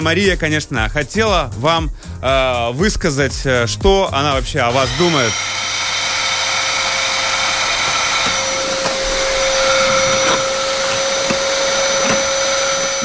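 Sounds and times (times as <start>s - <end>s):
speech: 0.0s - 5.6s
vacuum cleaner running: 4.6s - 13.0s
faint clicks and bumps of a moving vacuum cleaner: 7.9s - 13.0s.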